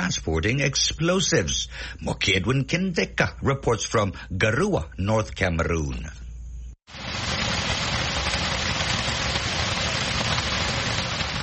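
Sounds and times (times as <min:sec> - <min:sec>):
speech: 0:00.2 - 0:06.2
heavy rain downpour drumming on surfaces in northern Cameroon: 0:06.9 - 0:11.4.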